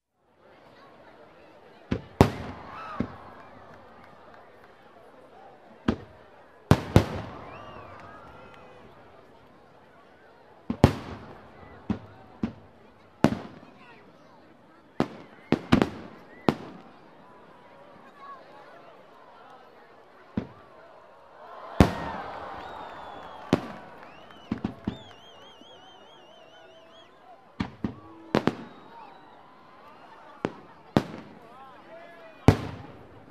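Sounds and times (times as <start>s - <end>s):
noise of a crowd of people: 0.0s - 33.2s
fireworks shots and explosions: 1.9s - 4.0s, 5.9s - 9.4s, 10.7s - 14.1s, 15.0s - 17.1s, 21.8s - 25.4s, 27.6s - 29.2s, 30.0s - 31.6s, 32.4s - 33.2s.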